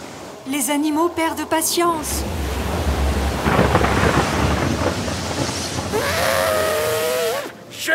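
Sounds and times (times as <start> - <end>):
speech: 0.5 - 2.6
heavy rain pouring: 1.9 - 7.8
deep rumbling thunder: 2.0 - 6.7.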